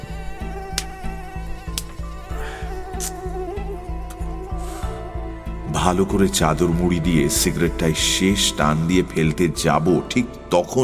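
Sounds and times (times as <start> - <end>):
mosquitoes buzzing: 0.0 - 8.6
rhythmic low pulsing: 0.0 - 10.5
speech: 5.8 - 10.8.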